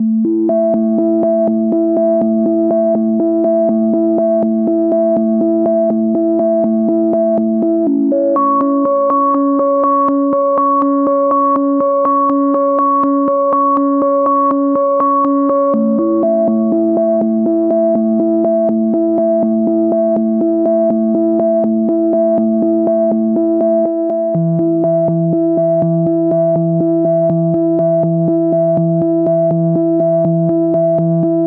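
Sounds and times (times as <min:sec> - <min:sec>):
122 BPM melodic arpeggios in C major and A minor: 0:00.0 - 0:31.4.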